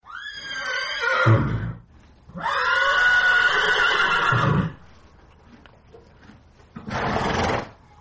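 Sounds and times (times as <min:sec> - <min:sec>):
horse neighing: 0:00.1 - 0:04.8, 0:06.8 - 0:07.8
horse breathy snort: 0:06.8 - 0:07.8.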